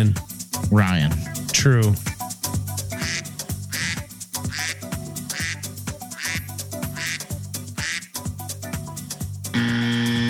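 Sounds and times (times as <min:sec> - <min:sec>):
speech: 0:00.0 - 0:02.1
thumping musical beat: 0:00.0 - 0:09.6
sustained buzzy tone: 0:02.9 - 0:05.6, 0:09.5 - 0:10.2
duck quacking: 0:03.0 - 0:08.2.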